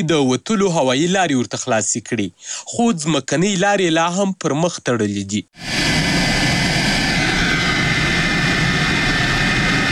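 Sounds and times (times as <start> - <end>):
speech: 0.0 - 5.9
private airplane engine roar arriving in Uruzgan province, Afghanistan: 5.6 - 9.9.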